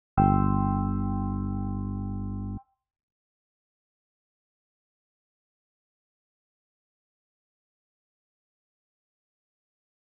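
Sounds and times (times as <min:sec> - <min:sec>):
bass G chord exercises: 0:00.2 - 0:02.6.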